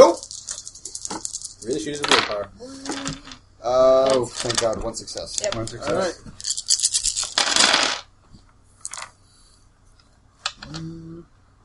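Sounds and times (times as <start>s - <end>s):
dice clattering on a hard surface: 0.0s - 3.4s, 4.0s - 8.1s, 8.8s - 9.1s
speech: 1.6s - 6.4s.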